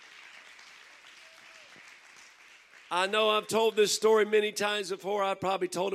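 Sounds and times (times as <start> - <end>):
crowd of people applauding: 0.0 - 4.0
speech: 2.9 - 5.9.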